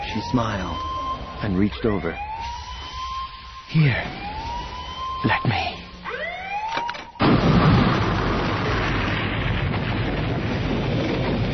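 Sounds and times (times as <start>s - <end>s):
rising siren-like whine: 0.0s - 7.4s
speech: 0.2s - 2.3s, 3.7s - 4.3s, 5.2s - 5.7s
massive explosion tearing through a fleet of ships: 7.2s - 11.5s
sustained roaring, rumbling blast wash: 7.2s - 11.5s.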